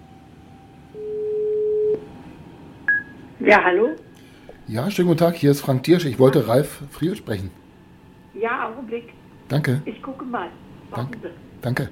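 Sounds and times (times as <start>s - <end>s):
telephone ringing tone of an outgoing call: 0.9s - 2.0s
speech: 3.4s - 4.0s, 4.7s - 7.6s, 8.4s - 11.8s.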